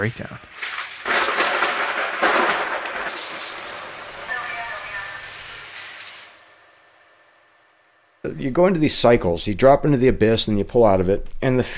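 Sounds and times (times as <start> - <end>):
speech: 0.0 - 0.8, 8.2 - 11.7
hissing rain-like wash: 0.4 - 7.1
loud rolling thunder rumble: 0.5 - 6.8.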